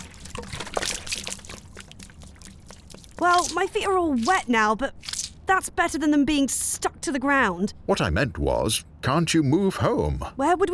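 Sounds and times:
water pouring from a knocked-over bottle: 0:00.0 - 0:05.6
speech: 0:03.2 - 0:10.7.

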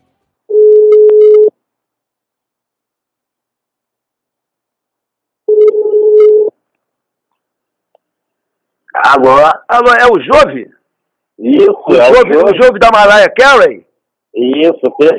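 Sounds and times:
telephone ringing tones on an outgoing call: 0:00.5 - 0:01.5, 0:05.5 - 0:06.5
speech: 0:09.1 - 0:10.8, 0:11.4 - 0:15.1.

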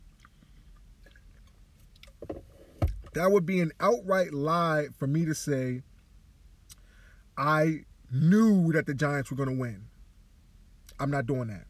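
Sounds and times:
person sipping and swallowing water: 0:00.1 - 0:02.2
speech: 0:03.2 - 0:05.9, 0:07.4 - 0:09.9, 0:11.0 - 0:11.6.

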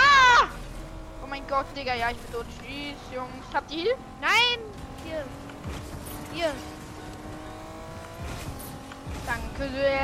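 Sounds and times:
video game car engine droning and revving: 0:00.0 - 0:10.0
speech: 0:01.5 - 0:06.8, 0:09.2 - 0:10.0.

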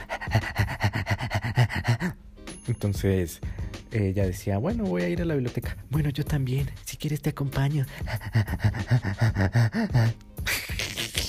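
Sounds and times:
person imitating a dog panting: 0:00.0 - 0:02.2, 0:07.6 - 0:11.2
speech: 0:00.4 - 0:00.6, 0:02.8 - 0:10.5.

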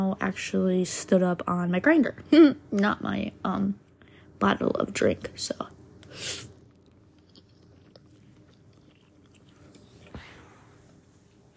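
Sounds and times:
speech: 0:00.1 - 0:03.8, 0:04.4 - 0:06.5
person chewing ramen: 0:06.0 - 0:10.5.

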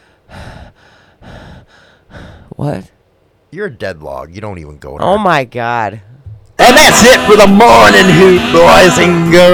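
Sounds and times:
heavy rasping breathing into a microphone: 0:00.0 - 0:02.6
speech: 0:02.6 - 0:09.5.

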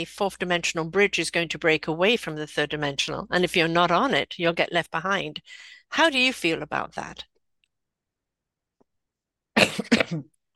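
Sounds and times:
speech: 0:00.0 - 0:07.3, 0:09.6 - 0:10.5
person coughing: 0:09.6 - 0:10.3.

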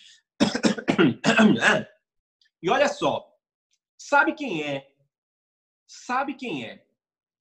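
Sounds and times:
person clearing throat: 0:00.4 - 0:01.8
speech: 0:01.0 - 0:02.0, 0:02.6 - 0:03.3, 0:04.0 - 0:04.9, 0:05.9 - 0:06.9.

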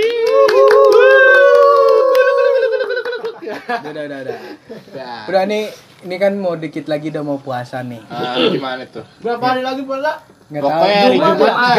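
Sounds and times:
whooping and cheering voices: 0:00.0 - 0:03.4
group clapping hands in applause: 0:00.0 - 0:03.9
laughter: 0:01.0 - 0:05.3
speech: 0:03.7 - 0:11.7.

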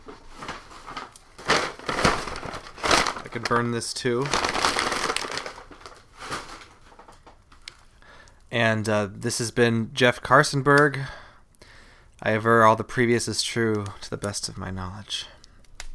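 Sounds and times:
brown Publix paper bag crinkling and crumpling: 0:00.0 - 0:07.5
speech: 0:03.4 - 0:04.6, 0:08.6 - 0:11.2, 0:12.2 - 0:15.3.

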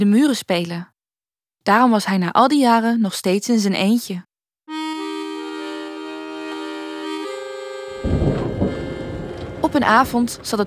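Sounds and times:
speech: 0:00.0 - 0:00.9, 0:01.6 - 0:04.3, 0:09.8 - 0:10.6
steady humming musical tone: 0:04.7 - 0:10.6.

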